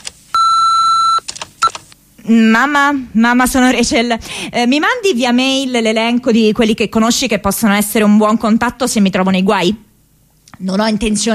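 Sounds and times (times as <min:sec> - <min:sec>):
answering machine beep: 0:00.4 - 0:01.8
speech: 0:02.3 - 0:09.9, 0:10.6 - 0:11.3.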